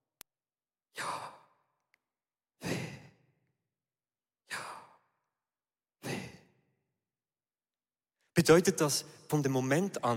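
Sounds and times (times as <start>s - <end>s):
breathing in and out: 0.8s - 3.6s, 4.3s - 6.9s
speech: 8.4s - 10.1s.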